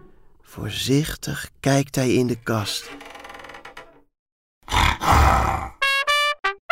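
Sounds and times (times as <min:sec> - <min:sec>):
speech: 0:00.5 - 0:03.0
tiger roaring: 0:04.7 - 0:05.8.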